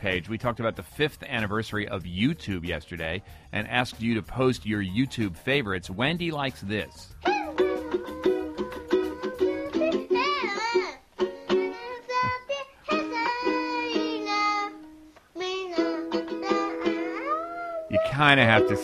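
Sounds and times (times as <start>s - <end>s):
speech: 0.0s - 7.2s, 18.2s - 18.8s
small child singing a tune: 7.2s - 18.8s
ukulele strumming: 7.2s - 18.8s.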